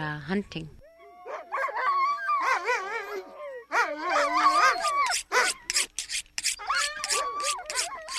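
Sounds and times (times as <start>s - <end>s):
speech: 0.2s - 0.8s
sled dog team yapping and yelping excitedly in anticipation of being fed: 1.2s - 8.1s
knives being sharpened to skin and gut a bull muskox: 4.8s - 8.1s.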